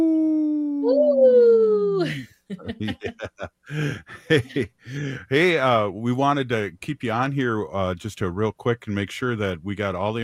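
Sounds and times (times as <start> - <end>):
person imitating a wolf with a long sliding howl: 0.0 - 2.0
speech: 2.5 - 10.2
chattering voices or laughter: 2.6 - 5.6.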